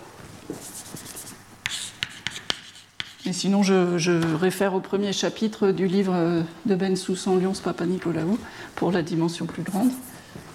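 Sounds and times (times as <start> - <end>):
scratchy strokes of a formula being written by hand: 0.5 - 3.4, 9.6 - 10.2
writing instrument tapping a surface: 0.9 - 3.2
speech: 3.2 - 10.1.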